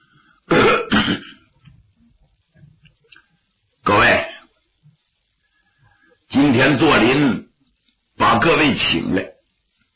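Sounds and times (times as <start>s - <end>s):
person clearing throat: 0.5s - 1.5s
speech: 6.6s - 7.4s, 8.2s - 9.3s.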